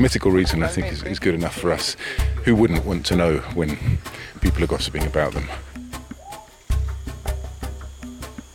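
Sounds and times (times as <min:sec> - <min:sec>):
speech: 0:00.0 - 0:05.7
steady high insect-like drone: 0:00.0 - 0:08.5
bird calls and chirps in jungle trees in Vaupés: 0:05.4 - 0:08.5.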